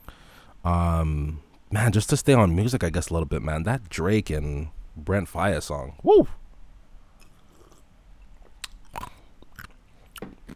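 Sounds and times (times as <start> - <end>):
speech: 0.6 - 6.4
chewing food with wet crunchy bites: 7.2 - 10.5.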